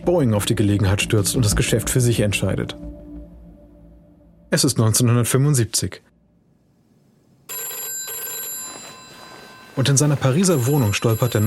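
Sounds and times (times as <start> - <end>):
speech: 0.0 - 2.9, 4.5 - 6.2, 9.8 - 11.4
old-style telephone bell ringing in a Paris apartment: 7.5 - 11.4.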